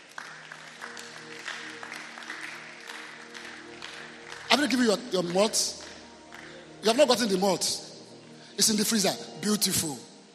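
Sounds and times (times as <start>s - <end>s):
audience clapping for a church choir: 0.0s - 7.7s
speech: 4.6s - 5.8s, 6.8s - 7.9s, 8.6s - 10.1s.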